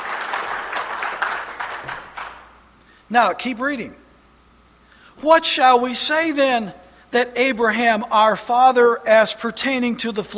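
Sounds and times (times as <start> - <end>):
audience applause during a sermon: 0.0 - 2.6
speech: 3.1 - 4.0, 5.2 - 10.3.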